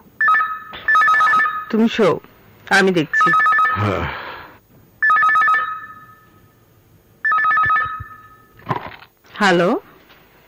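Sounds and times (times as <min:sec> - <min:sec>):
telephone ringing at night with trilling electronic tones: 0:00.2 - 0:01.7, 0:02.7 - 0:03.9, 0:05.0 - 0:06.6, 0:07.2 - 0:08.6
speech: 0:01.7 - 0:04.2, 0:09.4 - 0:09.9.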